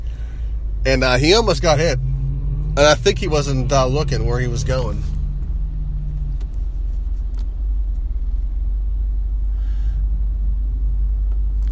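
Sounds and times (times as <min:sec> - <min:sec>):
car driving along a road with engine and tire rumble: 0:00.0 - 0:11.7
speech: 0:00.8 - 0:02.1, 0:02.8 - 0:05.2.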